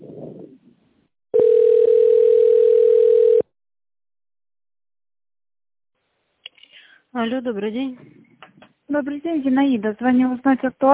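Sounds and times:
loud steady single-pitch telephone line tone during call transfer to an operator: 1.4 - 3.5
speech: 7.2 - 8.2, 8.9 - 10.9.

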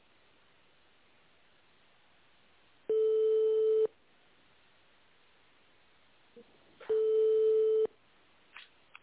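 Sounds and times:
ringback tone of an unanswered phone call: 2.9 - 3.9, 6.9 - 7.9.

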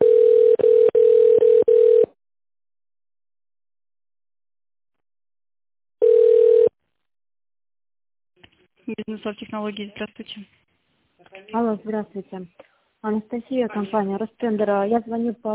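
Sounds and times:
telephone ringback tone while a call connects to an operator: 0.0 - 2.2, 6.0 - 6.7
speech: 9.1 - 10.7, 11.5 - 15.5.

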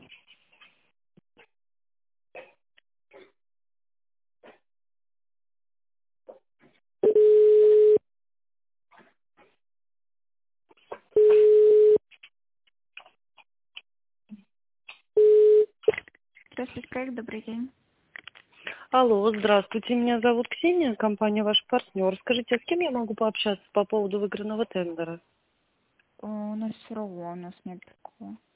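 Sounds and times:
telephone ringback tones while a call is transferred: 7.0 - 8.0, 11.2 - 12.0
speech: 17.0 - 17.8, 18.9 - 25.3, 26.2 - 28.5.

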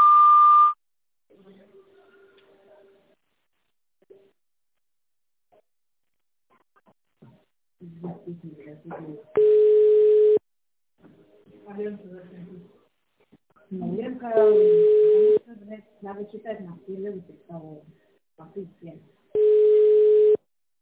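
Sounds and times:
speech: 8.2 - 10.0, 11.7 - 12.8, 13.7 - 19.4
steady telephone beep on a sanatorium's phone line: 9.4 - 10.4, 14.5 - 15.4, 19.4 - 20.4.

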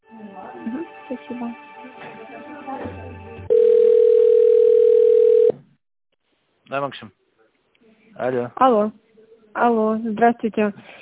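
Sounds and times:
speech: 0.6 - 1.7, 6.7 - 7.2, 8.2 - 9.0, 9.6 - 11.0
steady telephone tone as a call is transferred: 3.5 - 5.6.

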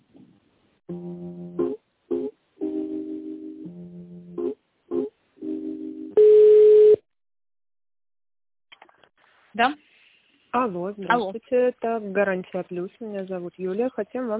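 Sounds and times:
telephone transfer tones of short two-pitch beeps and chirps: 6.2 - 7.0
speech: 9.6 - 9.8, 10.6 - 14.3.

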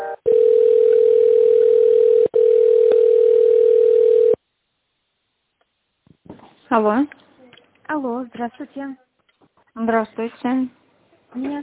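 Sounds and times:
telephone line tones while a call is being transferred: 0.2 - 4.4
speech: 6.7 - 7.2, 8.0 - 9.1, 9.8 - 10.8, 11.3 - 11.6.

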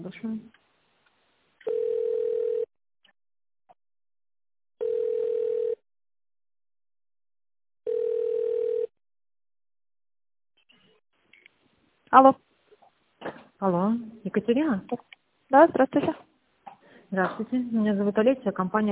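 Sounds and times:
speech: 0.0 - 0.6, 12.2 - 12.4, 13.6 - 16.3, 17.1 - 18.9
telephone ringback tone while a call is being transferred: 1.7 - 2.7, 4.8 - 5.8, 7.9 - 8.9.

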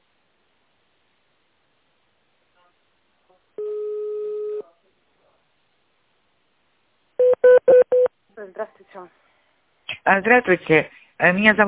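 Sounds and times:
DTMF keypad tones from a phone call to a company line: 7.2 - 8.1
speech: 8.5 - 9.3, 10.0 - 11.6.

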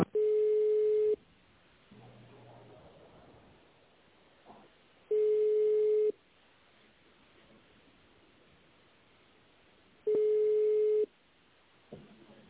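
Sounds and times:
telephone ringback tone beeps while calling a company: 0.1 - 1.2, 5.1 - 6.1, 10.1 - 11.1.

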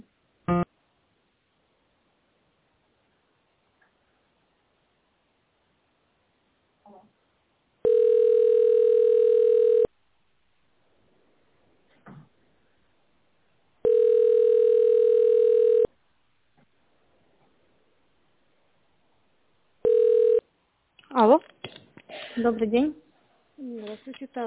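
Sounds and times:
telephone ringback tone while a business call is transferred: 7.8 - 9.9, 13.8 - 15.9, 19.8 - 20.4
speech: 22.4 - 23.0, 24.1 - 24.4.

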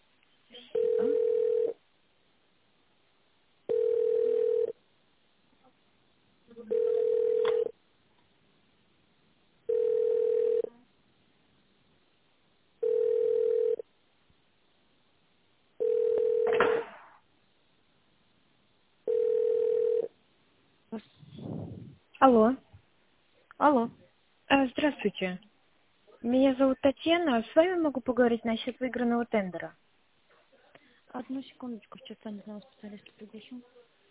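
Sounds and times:
telephone line beeps while a call is transferred: 0.8 - 1.8, 3.7 - 4.7, 6.7 - 7.7, 9.7 - 10.7, 12.8 - 13.8, 15.8 - 16.6, 19.1 - 20.1
speech: 22.2 - 22.6, 23.6 - 25.5, 26.2 - 29.8, 31.1 - 33.8.

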